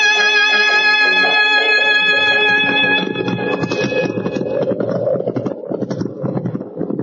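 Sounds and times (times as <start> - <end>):
sustained musical tones: 0.0 - 5.6
wind-like noise in cold winter weather: 3.0 - 7.0.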